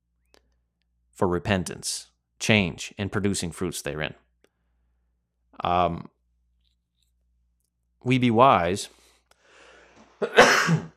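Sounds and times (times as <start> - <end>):
speech: 1.2 - 4.2, 5.6 - 6.1, 8.0 - 9.0, 10.2 - 10.9
person sneezing: 10.2 - 10.9.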